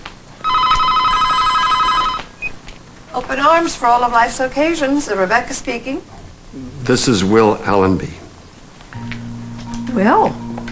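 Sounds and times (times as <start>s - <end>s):
telephone ringing with a steady electronic warble: 0.4s - 2.6s
speech: 3.2s - 8.2s, 10.0s - 10.4s.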